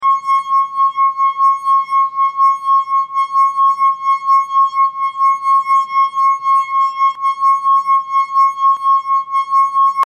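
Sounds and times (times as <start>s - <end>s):
small glass: 0.0s - 10.0s.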